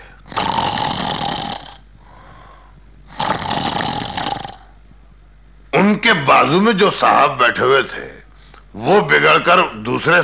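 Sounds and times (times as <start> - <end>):
voice imitating a sleeping man's loud snoring: 0.2 - 1.8, 3.1 - 4.7
speech: 6.1 - 8.2, 8.8 - 10.2.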